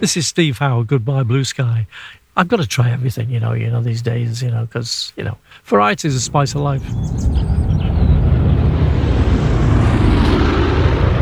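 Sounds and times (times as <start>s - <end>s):
speech: 0.0s - 7.6s
airplane flying overhead: 6.1s - 11.2s.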